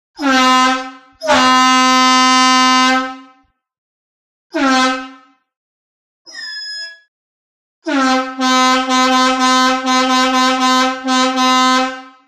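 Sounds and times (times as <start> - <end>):
horn blast: 0.2 - 3.4, 4.5 - 5.3, 7.9 - 12.2.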